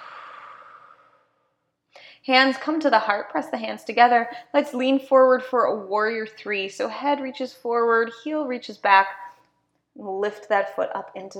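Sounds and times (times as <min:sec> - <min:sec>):
soft deep breath out during a yoga session: 0:00.0 - 0:01.4
speech: 0:02.2 - 0:09.2, 0:10.0 - 0:11.3.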